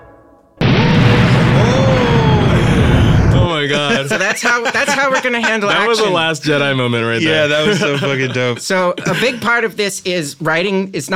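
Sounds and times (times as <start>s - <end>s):
loud bomb blast: 0.0s - 4.0s
whining tones sweeping through the noise: 0.6s - 3.6s
chain of explosions reaching a reactor core: 0.6s - 4.0s
laughter: 1.6s - 9.6s
speech: 4.0s - 11.1s.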